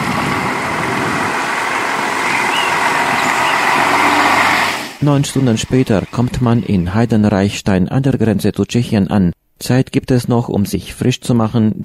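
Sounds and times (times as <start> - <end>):
city administration bus pulling away: 0.0 - 7.6
speech: 5.0 - 11.8.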